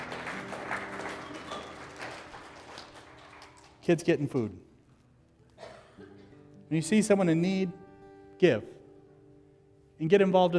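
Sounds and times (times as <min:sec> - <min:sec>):
audience applauding: 0:00.0 - 0:04.5
speech: 0:03.9 - 0:04.7, 0:06.7 - 0:07.8, 0:08.4 - 0:08.8, 0:10.0 - 0:10.5.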